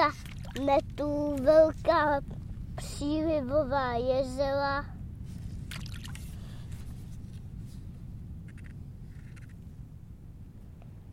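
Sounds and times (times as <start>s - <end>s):
water sloshing and splashing as waves are made: 0.0s - 2.6s, 5.6s - 7.2s
speech: 0.0s - 5.0s
steady low rumble: 0.0s - 11.1s.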